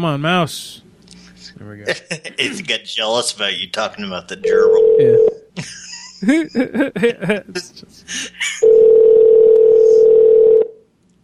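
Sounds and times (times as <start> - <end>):
speech: 0.0 - 0.9, 1.5 - 8.8
loud steady telephone tone: 4.4 - 5.4, 8.6 - 10.8
rhythmic voice-like laughing bursts: 5.6 - 8.8.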